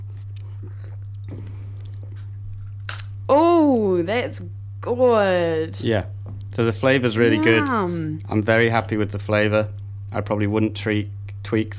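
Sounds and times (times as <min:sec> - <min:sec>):
person sipping coffee with soft slurping: 0:00.0 - 0:03.1
steady low electrical hum: 0:00.0 - 0:11.7
speech: 0:03.3 - 0:11.7.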